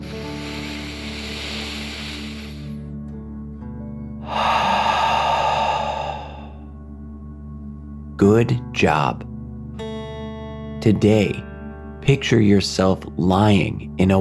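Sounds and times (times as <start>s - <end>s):
deep breath in and out through the mouth in a dragon-style breathing exercise: 0.0s - 3.0s, 4.2s - 6.9s
speech: 8.2s - 9.3s, 10.8s - 14.1s.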